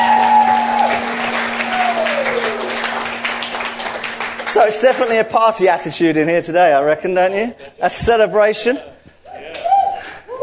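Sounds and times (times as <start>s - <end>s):
crowd applauding: 0.0s - 5.8s
low steady hum: 0.0s - 10.4s
speech: 4.6s - 9.0s.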